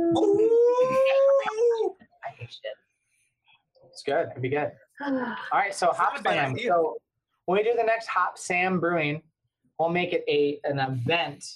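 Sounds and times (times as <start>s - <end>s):
person imitating a wolf howling at the moon: 0.0s - 1.9s
speech: 4.0s - 11.5s.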